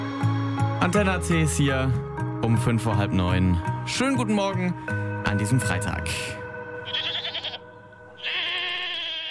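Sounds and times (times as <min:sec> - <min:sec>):
speech: 0:00.8 - 0:06.4
goat bleating: 0:06.8 - 0:09.3.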